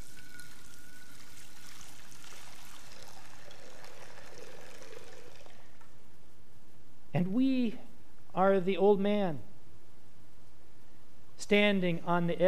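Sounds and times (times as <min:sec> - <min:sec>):
water pouring into a stone baptismal font in a church: 0:00.0 - 0:05.8
speech: 0:07.2 - 0:09.5, 0:11.5 - 0:12.4.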